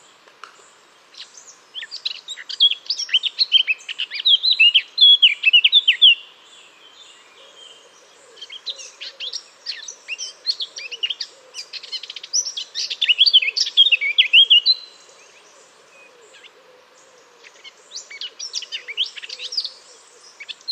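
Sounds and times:
Eurasian blackcap Sylvia atricapilla scratchy warbling song: 0.0 - 20.7.

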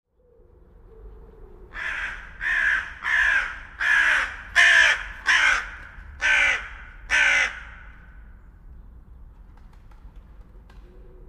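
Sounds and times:
carrion crow Corvus corone cawing: 1.7 - 8.2.

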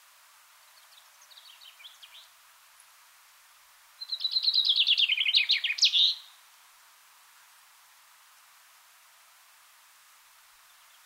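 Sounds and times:
common chaffinch Fringilla coelebs singing: 0.6 - 3.0, 4.0 - 6.4, 10.6 - 11.0.

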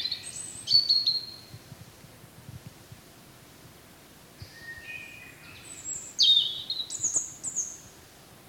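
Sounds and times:
European robin Erithacus rubecula singing: 0.0 - 1.6, 4.4 - 7.9.

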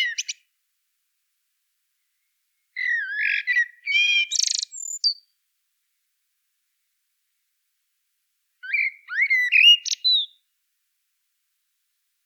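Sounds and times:
common blackbird Turdus merula fluty song: 0.0 - 0.5, 2.1 - 5.4, 8.6 - 10.5.

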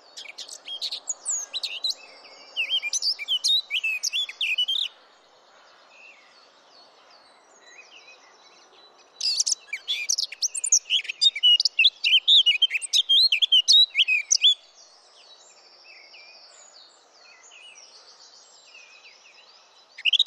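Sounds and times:
Eurasian blackcap Sylvia atricapilla song: 0.0 - 4.9, 9.2 - 14.6, 19.9 - 20.2.

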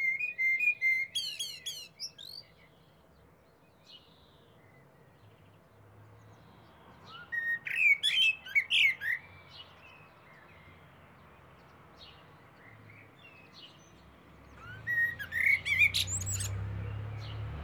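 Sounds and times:
Eurasian blackbird Turdus merula singing fluted warbling phrases with high squeaky notes: 0.0 - 3.0, 7.0 - 17.5.

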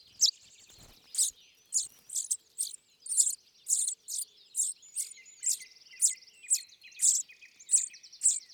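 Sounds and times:
soft bird trills and chatter: 0.0 - 8.5
common chaffinch Fringilla coelebs calling: 0.1 - 8.4.

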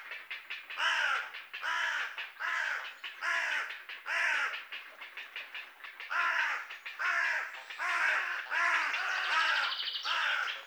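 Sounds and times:
Carrion Crow (Corvus corone) giving loud raspy caws: 0.7 - 4.7, 6.1 - 10.6
Carrion Crow (Corvus corone) giving soft rapid croaking notes: 0.7 - 10.6.

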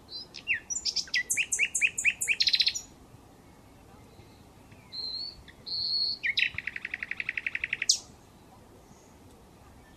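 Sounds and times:
common nightingale song: 0.1 - 2.9, 3.5 - 8.1.

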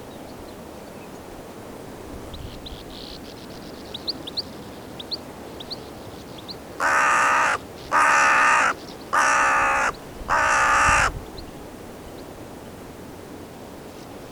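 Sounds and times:
carrion crow Corvus corone cawing: 6.8 - 11.2.

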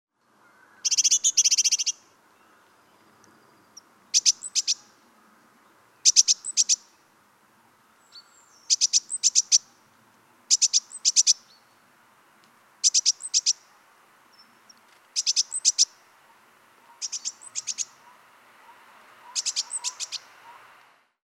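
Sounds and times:
Parus major calling: 0.8 - 2.1, 3.6 - 5.0, 6.0 - 7.0, 8.0 - 9.8, 10.5 - 11.8, 12.8 - 20.7.

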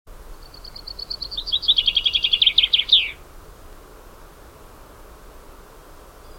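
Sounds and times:
Fringilla coelebs song: 0.2 - 3.3.

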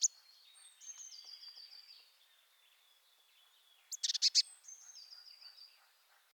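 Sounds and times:
Eurasian blue tit Cyanistes caeruleus chattering: 3.9 - 5.5.

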